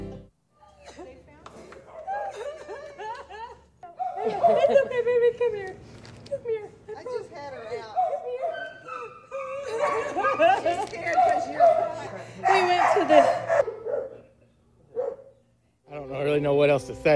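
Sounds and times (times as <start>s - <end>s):
light laughter: 2.0s - 5.8s, 9.6s - 14.6s
pug barking and yelping excitedly: 7.7s - 14.3s, 14.9s - 15.4s.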